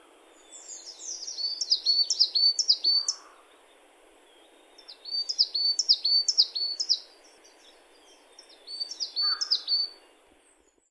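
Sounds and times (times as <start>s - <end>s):
faint background hiss: 0.0s - 10.8s
bird song with quick high down-slurred notes: 0.3s - 3.3s, 4.3s - 10.8s.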